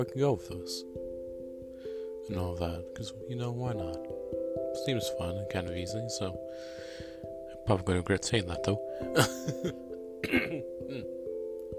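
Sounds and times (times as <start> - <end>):
speech: 0.0 - 1.0, 2.3 - 7.0, 7.7 - 11.2
steady low tonal background: 0.0 - 11.7
person clearing throat: 9.2 - 11.2.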